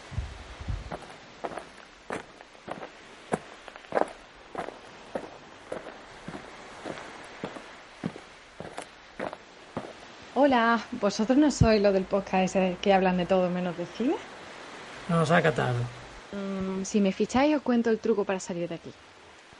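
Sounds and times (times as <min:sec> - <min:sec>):
footsteps: 0:00.7 - 0:10.0
speech: 0:10.4 - 0:14.3, 0:15.1 - 0:19.1.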